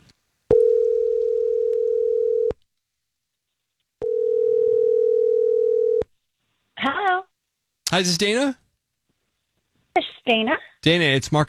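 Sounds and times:
ringback tones of an outgoing phone call: 0.5s - 2.6s, 4.0s - 6.0s
speech: 8.0s - 8.6s, 10.3s - 11.4s.

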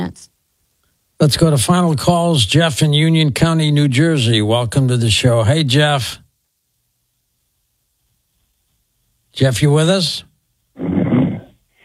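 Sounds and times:
speech: 0.1s - 0.3s, 1.2s - 6.2s, 9.4s - 11.0s
man snoring loudly over a tinny phone line while on hold: 10.8s - 11.6s.

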